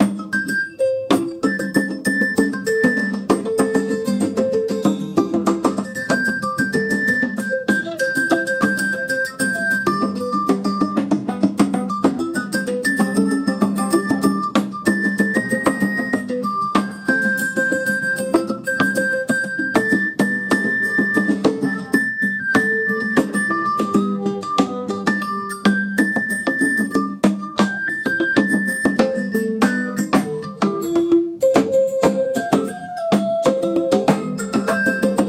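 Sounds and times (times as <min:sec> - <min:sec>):
traditional Japanese music: 0:00.0 - 0:35.2.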